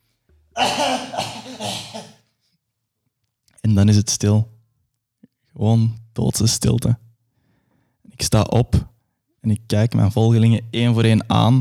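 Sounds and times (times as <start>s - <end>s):
old man coughing in the distance: 0.6s - 2.2s
speech: 0.6s - 2.2s, 3.6s - 4.5s, 5.6s - 7.0s, 8.2s - 11.5s.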